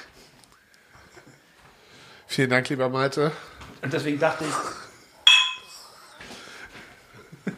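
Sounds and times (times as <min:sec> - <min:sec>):
speech: 0:02.3 - 0:04.7
beer glasses clinking in a toast: 0:05.3 - 0:05.8.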